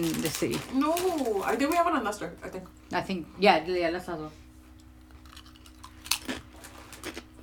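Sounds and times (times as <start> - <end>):
munching crisps: 0.0 - 1.9, 5.0 - 7.4
speech: 0.0 - 4.4.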